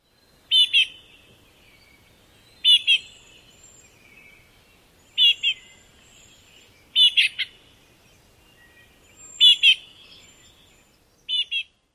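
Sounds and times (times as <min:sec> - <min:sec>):
nasal begging calls of fledglings: 0:00.4 - 0:01.2, 0:01.9 - 0:03.5, 0:05.1 - 0:07.7, 0:08.6 - 0:11.8.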